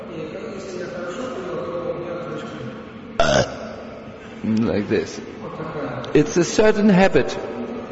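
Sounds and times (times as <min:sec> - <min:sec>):
loud short burp after a meal: 0:03.2 - 0:03.8
speech: 0:04.5 - 0:07.9.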